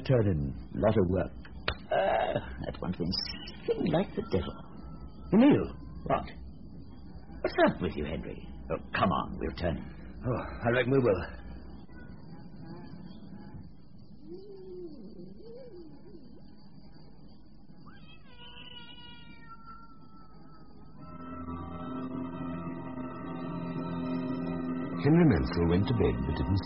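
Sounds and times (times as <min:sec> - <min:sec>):
speech: 0:00.0 - 0:01.5, 0:02.3 - 0:04.7, 0:05.3 - 0:06.4, 0:07.4 - 0:11.4, 0:25.0 - 0:26.6
sustained tonal drone: 0:00.0 - 0:17.8, 0:19.7 - 0:26.6
steady hum: 0:00.0 - 0:26.6
cat meowing: 0:17.8 - 0:21.0.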